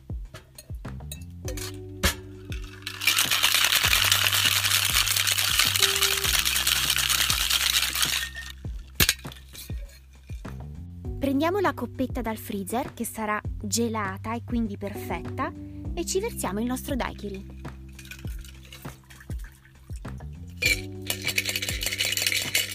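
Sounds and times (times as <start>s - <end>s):
ice shaken hard in a cocktail shaker: 1.5s - 10.5s, 17.5s - 22.7s
speech: 11.3s - 17.6s.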